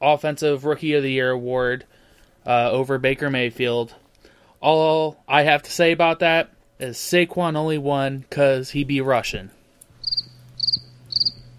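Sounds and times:
speech: 0.0s - 4.0s, 4.6s - 9.6s
faint low hum: 0.1s - 11.5s
crickets chirping: 10.0s - 11.5s.

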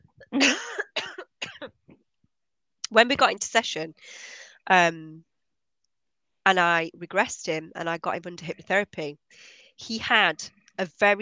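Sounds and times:
person coughing: 0.4s - 1.7s
speech: 2.9s - 5.3s, 6.4s - 11.2s.

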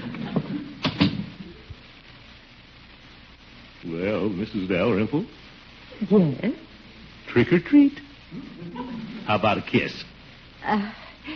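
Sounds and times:
door opening and shutting: 0.2s - 1.4s
faint thud: 0.3s - 1.4s
speech: 4.2s - 6.7s, 7.4s - 11.3s.

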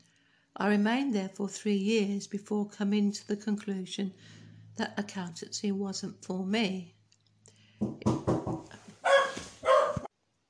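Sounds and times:
speech: 0.6s - 7.0s
dog barking: 9.0s - 10.1s.

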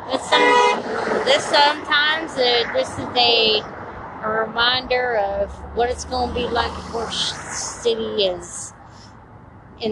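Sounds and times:
cars passing by on a busy street: 0.0s - 9.9s
steady low road rumble: 0.0s - 9.9s
short fairly loud car horn toots: 0.2s - 0.8s
speech: 1.2s - 8.6s, 9.8s - 9.9s.

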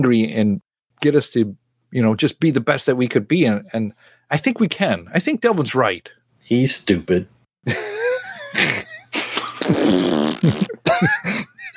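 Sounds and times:
speech: 0.0s - 7.9s, 8.5s - 8.9s, 9.7s - 11.5s
wet sputtering raspberry fart noises blown with the mouth: 8.6s - 10.9s.

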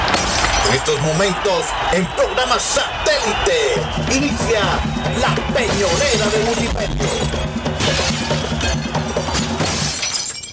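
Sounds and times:
glass shattering: 0.1s - 0.8s, 5.8s - 10.5s
speech: 0.8s - 8.0s.

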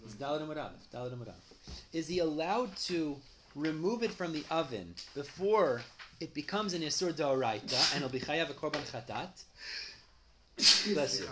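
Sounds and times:
speech: 0.2s - 9.9s, 10.6s - 11.3s
person sneezing: 7.7s - 8.1s, 10.6s - 11.3s.

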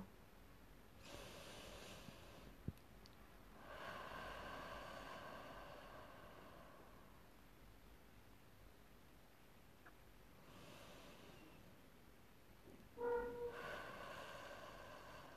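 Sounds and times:
slow deep breath in through the nose in a guided breathing exercise: 1.0s - 2.6s, 3.6s - 7.2s, 10.4s - 11.7s, 13.5s - 15.3s.

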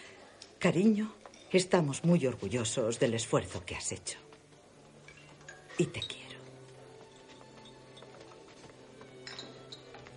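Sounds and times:
speech: 0.6s - 4.3s, 5.8s - 6.2s
glasses clinking during a toast: 5.0s - 10.1s.

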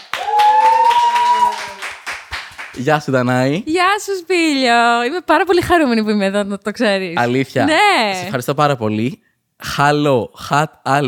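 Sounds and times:
applause, hands clapping: 0.0s - 2.9s
speech: 2.8s - 11.0s.

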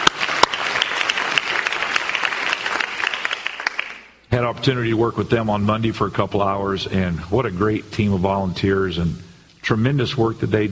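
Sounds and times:
room full of people clapping: 0.0s - 4.2s
speech: 4.3s - 10.6s.

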